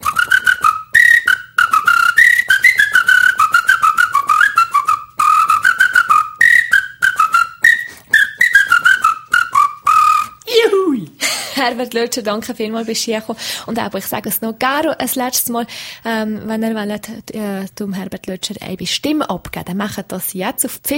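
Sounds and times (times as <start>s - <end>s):
person whistling an Irish folk tune solo: 0.0s - 10.4s
breaths between whistled phrases: 11.2s - 11.6s, 13.3s - 13.7s, 15.7s - 16.1s
speech: 11.6s - 20.9s.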